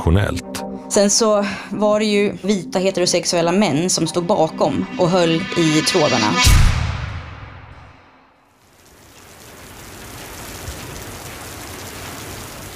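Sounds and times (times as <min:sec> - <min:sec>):
speech: 0:00.0 - 0:06.8
heavy rain pouring down: 0:08.6 - 0:12.7.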